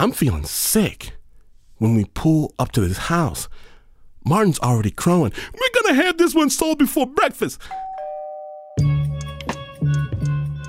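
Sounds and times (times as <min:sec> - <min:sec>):
speech: 0:00.0 - 0:01.2, 0:01.8 - 0:07.9
doorbell chiming ding-dong: 0:07.6 - 0:09.0.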